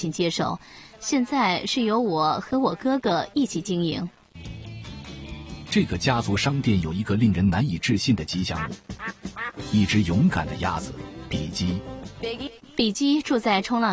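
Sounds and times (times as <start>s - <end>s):
speech: 0.0s - 4.6s, 5.7s - 13.9s
2-year-old Pekin duck quacking: 8.5s - 9.7s.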